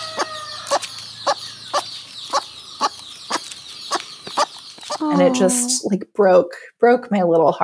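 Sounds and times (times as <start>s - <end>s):
faint chatter of other birds: 0.0s - 5.1s
chicken flock making lost chick call: 0.0s - 5.4s
speech: 5.0s - 7.6s.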